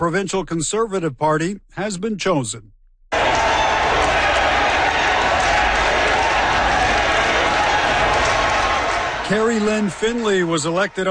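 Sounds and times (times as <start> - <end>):
speech: 0.0 - 2.8, 9.3 - 11.1
large indoor crowd of supporters cheering at election announcement: 3.1 - 11.1
crowd clapping: 3.2 - 11.1.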